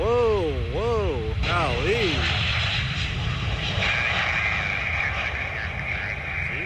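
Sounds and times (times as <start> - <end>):
voices: 0.0 - 2.6, 3.8 - 6.6
jet engine roar during landing: 0.0 - 6.6
airplane tail scraping the runway: 1.5 - 6.6.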